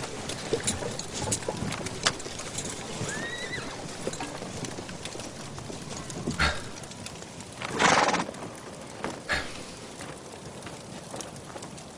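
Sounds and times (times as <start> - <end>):
horse hooves clopping: 0.0 - 11.9
outdoor noise: 0.0 - 11.9
horse whinnying: 3.0 - 4.0
horse snorting: 6.2 - 6.9, 9.3 - 9.6.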